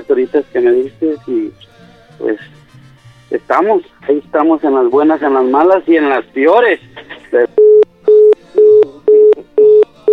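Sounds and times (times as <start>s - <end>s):
speech: 0.1s - 2.6s, 3.3s - 7.5s
telephone busy signal after a dropped call: 7.6s - 10.1s.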